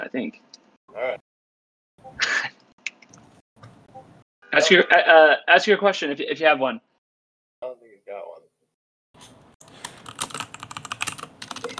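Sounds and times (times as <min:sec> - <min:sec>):
speech: 0:00.1 - 0:01.3, 0:04.6 - 0:06.9
laughter: 0:04.5 - 0:05.4
typing on a computer keyboard: 0:09.7 - 0:11.7.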